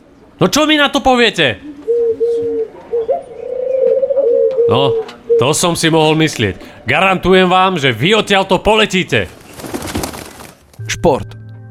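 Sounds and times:
speech: 0.4 - 1.7, 4.7 - 9.4, 11.0 - 11.3
pigeon cooing: 1.6 - 5.5.

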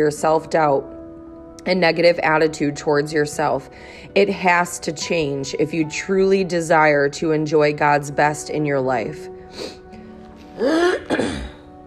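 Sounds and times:
speech: 0.0 - 1.0, 1.6 - 9.8, 10.6 - 11.5
harsh throat clearing from phlegm: 10.6 - 11.7.

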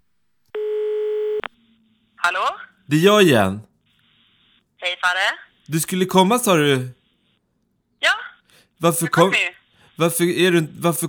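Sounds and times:
telephone ringing tone while calling someone: 0.6 - 1.5
speech: 2.2 - 3.7, 4.8 - 7.0, 8.8 - 11.0.

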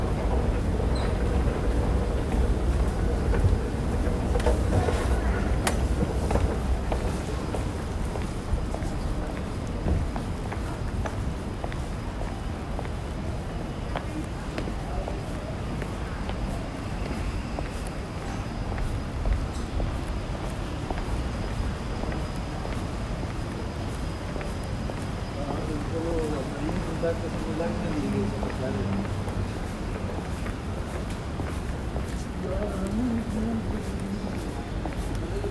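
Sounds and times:
footsteps along a windy city street: 0.0 - 35.5
traffic on a city street: 0.0 - 35.5
voices passing: 0.0 - 35.5.

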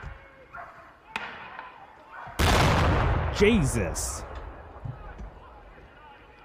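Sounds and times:
gunshot: 2.4 - 3.4
huge explosion: 2.4 - 3.6
speech: 3.4 - 4.3.

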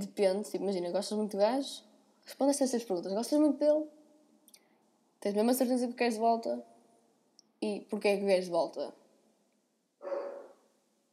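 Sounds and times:
speech: 0.0 - 4.0, 5.2 - 6.7, 7.6 - 9.0
dog giving a gruff breathy woof: 10.0 - 10.7.

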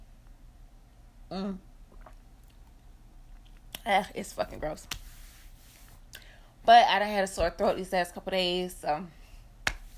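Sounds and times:
speech: 1.3 - 1.7, 3.9 - 5.0, 6.6 - 9.2
person sipping hot tea: 1.8 - 2.8
slurping and mouth noises: 1.8 - 3.9.

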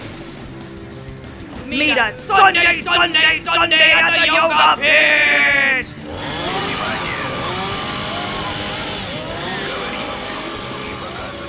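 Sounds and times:
laughter: 1.6 - 7.3
speech: 1.7 - 6.0
12-ton monster truck engine revving: 5.9 - 11.4.

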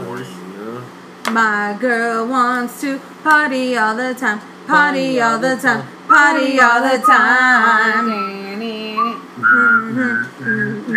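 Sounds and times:
speech: 1.3 - 8.4, 9.5 - 10.9
lower hummed or voiced drone: 4.7 - 10.9
sustained whistled notes: 9.0 - 10.9.

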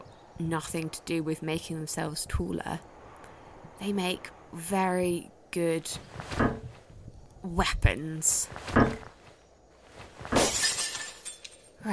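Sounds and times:
speech: 0.4 - 2.9, 3.8 - 6.6, 7.4 - 9.2
glass window shattering: 10.3 - 11.6
crunching, tinkling glass shards falling: 10.3 - 11.7.

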